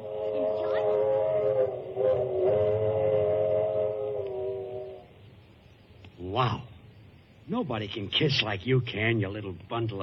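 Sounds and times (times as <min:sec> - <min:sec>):
train whistle blowing a chord-like tone: 0:00.0 - 0:05.2
low rumbling of a moving train: 0:00.0 - 0:10.0
speech: 0:06.4 - 0:06.7, 0:07.5 - 0:10.0.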